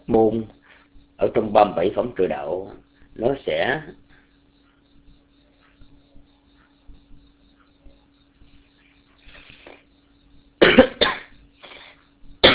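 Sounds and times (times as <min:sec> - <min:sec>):
speech: 0:00.1 - 0:00.6, 0:01.2 - 0:04.0
person clearing an itchy throat: 0:10.6 - 0:12.5
person coughing from an itchy throat: 0:10.6 - 0:12.5.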